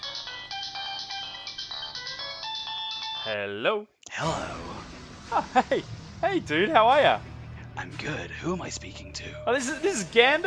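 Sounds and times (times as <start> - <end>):
phone ringtone with looping electronic melody: 0.0 - 3.3
speech: 3.2 - 4.7, 5.3 - 10.4.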